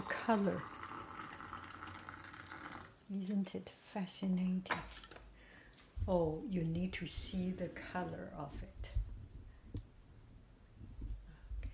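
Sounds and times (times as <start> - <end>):
just-boiled water pouring into a glass cup for fruit tea: 0.0 - 3.0
speech: 0.3 - 0.7, 3.1 - 5.1, 6.1 - 9.0.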